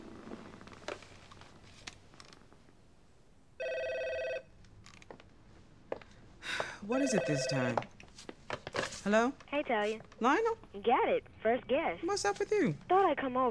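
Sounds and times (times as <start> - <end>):
telephone ringback tone through a phone line: 3.6 - 4.4, 7.0 - 7.7
speech: 6.9 - 8.0, 9.0 - 13.5.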